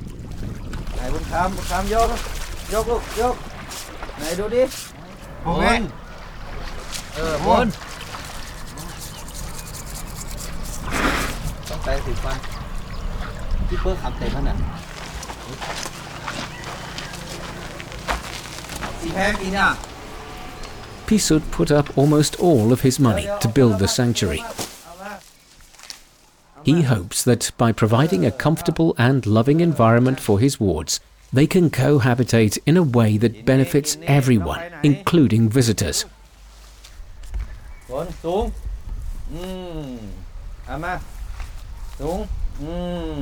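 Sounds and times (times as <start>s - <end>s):
elephants bathing and splashing in river water: 0.0s - 14.1s, 14.8s - 24.9s
steady outdoor wash: 0.0s - 43.2s
speech: 1.0s - 6.0s, 7.2s - 7.9s, 11.8s - 12.5s, 13.7s - 14.9s, 15.5s - 15.9s, 19.0s - 19.9s, 21.1s - 24.6s, 26.6s - 36.2s, 37.9s - 38.6s, 39.3s - 41.2s, 42.0s - 43.2s
voices chattering and calling out: 4.2s - 25.2s, 26.5s - 36.3s.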